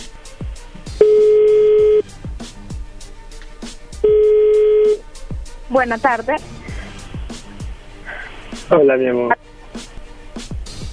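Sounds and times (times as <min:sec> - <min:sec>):
telephone call tones: 0:01.0 - 0:02.0, 0:04.0 - 0:05.0
speech: 0:05.7 - 0:06.5, 0:08.7 - 0:09.4.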